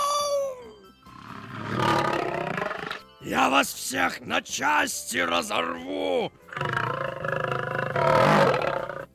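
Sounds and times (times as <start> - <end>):
tiger with its paw caught in a trap growling ferociously in a birch forest: 1.1 - 3.1, 6.5 - 9.1
speech: 3.2 - 6.4.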